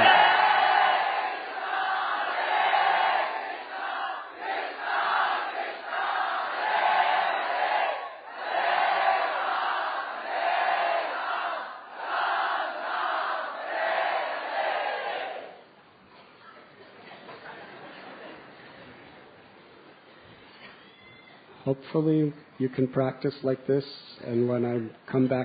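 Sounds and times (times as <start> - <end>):
crowd chanting a mantra in unison: 0.0 - 15.6
speech: 21.8 - 25.4.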